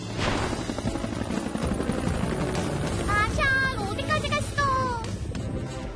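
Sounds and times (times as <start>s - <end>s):
helicopter flying through the night sky: 0.0s - 5.8s.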